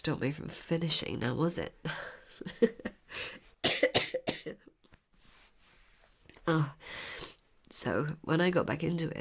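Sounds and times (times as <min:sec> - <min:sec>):
speech: 0:00.0 - 0:03.4, 0:06.5 - 0:06.8, 0:07.8 - 0:09.1
person in a harsh explosive coughing fit: 0:03.6 - 0:04.6.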